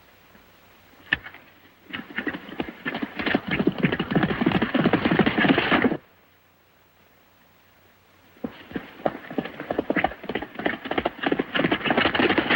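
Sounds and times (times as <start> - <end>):
horse hooves clip-clopping in a ranch yard as a horse is saddled: 1.1 - 6.0, 8.4 - 12.5.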